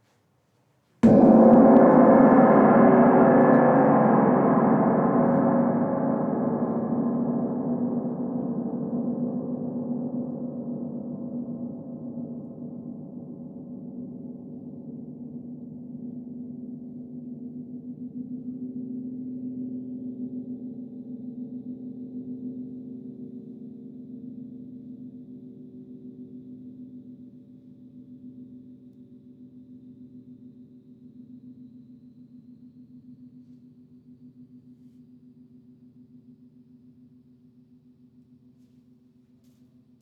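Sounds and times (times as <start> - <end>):
soft gong vibration: 1.0 - 8.3.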